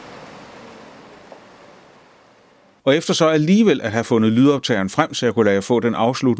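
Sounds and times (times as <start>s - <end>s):
calm sea water gently washing in a rocky coastal bay: 0.0s - 2.9s
speech: 2.8s - 6.3s.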